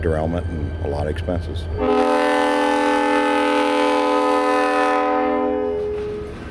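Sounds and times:
speech: 0.0s - 2.4s
freight train horn blaring: 1.8s - 6.5s.

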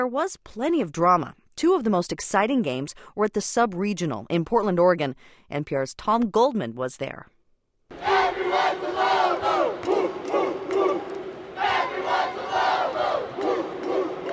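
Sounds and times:
speech: 0.0s - 7.3s
arena crowd chanting at a college basketball game: 7.9s - 14.3s.

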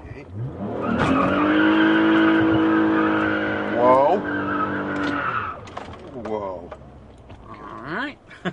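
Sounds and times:
drag race car engine roar: 0.0s - 6.1s
drag race car tires screeching while being warmed after the water pit: 0.3s - 6.0s.

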